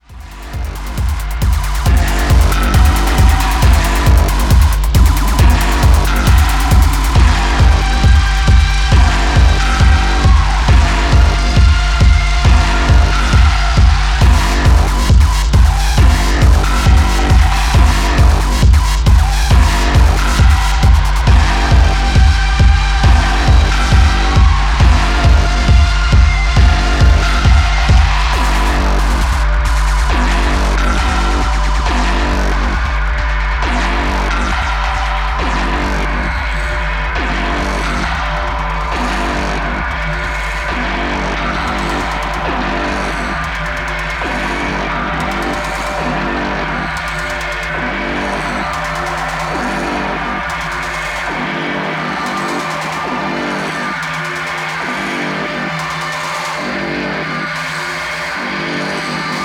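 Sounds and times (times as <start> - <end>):
drone: 0.0 - 59.4.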